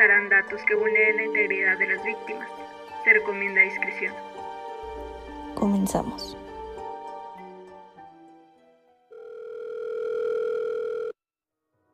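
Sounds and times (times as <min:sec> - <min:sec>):
speech: 0:00.0 - 0:04.4, 0:05.6 - 0:06.4
electronic dial tones of a cell phone call: 0:09.1 - 0:11.2.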